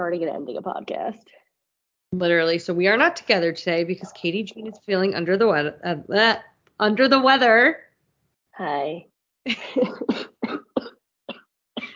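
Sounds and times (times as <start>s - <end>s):
speech: 0.0s - 1.4s, 2.1s - 7.9s, 8.6s - 10.6s
person coughing harshly: 9.8s - 11.0s.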